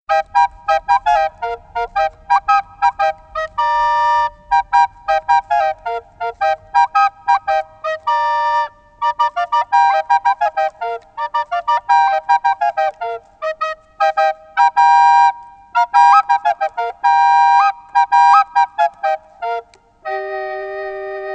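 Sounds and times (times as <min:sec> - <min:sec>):
flageolet: 0:00.1 - 0:21.3.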